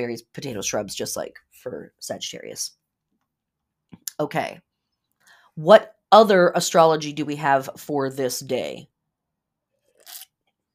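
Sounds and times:
speech: 0:00.0 - 0:02.8, 0:04.0 - 0:04.7, 0:05.6 - 0:08.9
person sipping a drink with an airy slurp: 0:09.8 - 0:10.4.

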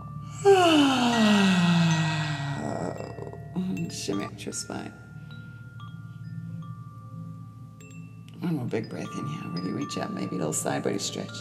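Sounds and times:
big exaggerated yawn: 0:00.4 - 0:03.0
speech: 0:03.9 - 0:05.0, 0:08.5 - 0:11.3.

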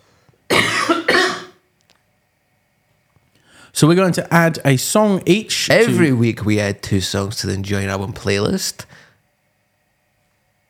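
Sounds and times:
person coughing: 0:00.5 - 0:01.6
speech: 0:03.8 - 0:09.0.

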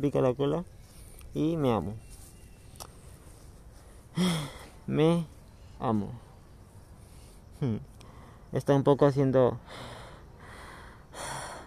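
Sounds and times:
speech: 0:00.0 - 0:02.1, 0:04.2 - 0:06.3, 0:07.6 - 0:07.9, 0:08.5 - 0:10.0
heavy labored breathing after exercise: 0:03.8 - 0:05.7, 0:09.6 - 0:11.6.

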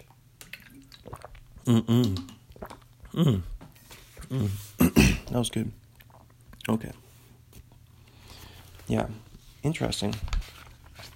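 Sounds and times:
person sipping and swallowing water: 0:00.0 - 0:06.7
speech: 0:01.7 - 0:02.3, 0:03.2 - 0:03.5, 0:04.3 - 0:05.8, 0:06.7 - 0:07.0, 0:08.9 - 0:10.4
short voiced throat clearing: 0:04.3 - 0:05.3.

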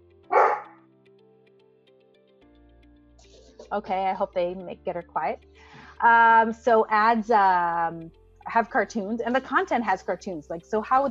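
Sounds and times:
pet dog barking: 0:00.3 - 0:00.8
speech: 0:03.7 - 0:11.0.

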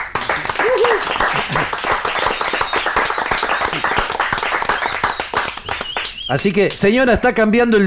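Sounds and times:
crowd applauding: 0:00.0 - 0:07.0
faint cheers: 0:00.4 - 0:01.2
speech: 0:06.3 - 0:07.8.

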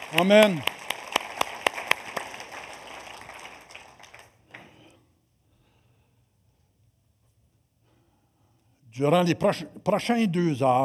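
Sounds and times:
crowd applauding: 0:00.0 - 0:04.7
sharp evenly spaced claps: 0:00.0 - 0:04.8
speech: 0:00.1 - 0:00.7, 0:09.0 - 0:10.8.

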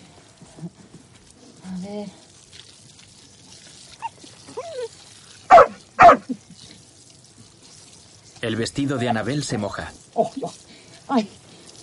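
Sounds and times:
speech: 0:01.8 - 0:02.2, 0:08.4 - 0:10.4, 0:11.1 - 0:11.4
female dog whining and yipping: 0:03.9 - 0:06.3
female dog barking while held by the collar: 0:05.5 - 0:06.3.

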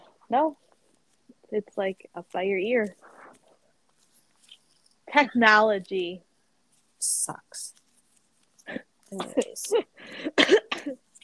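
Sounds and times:
speech: 0:00.3 - 0:00.7, 0:01.5 - 0:03.1, 0:05.1 - 0:06.3, 0:07.0 - 0:07.8, 0:08.7 - 0:11.0
person coughing harshly while trying to laugh: 0:09.2 - 0:11.0.

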